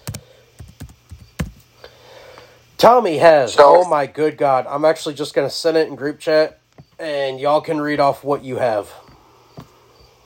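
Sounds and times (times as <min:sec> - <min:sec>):
typing on a computer keyboard: 0:00.0 - 0:01.6
low steady hum: 0:00.0 - 0:10.2
speech: 0:02.8 - 0:09.0.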